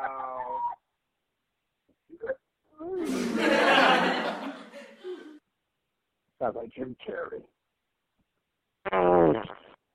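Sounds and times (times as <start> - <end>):
laughter: 3.0 - 5.4
speech: 6.4 - 7.6, 9.3 - 9.6
fart: 8.8 - 9.8.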